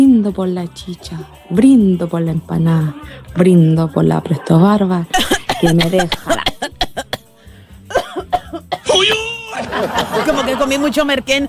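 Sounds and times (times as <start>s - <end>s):
speech: 0.3s - 6.4s, 9.8s - 11.4s
throat sounds: 5.2s - 8.8s
person coughing: 5.2s - 9.3s
laughter: 8.9s - 11.2s.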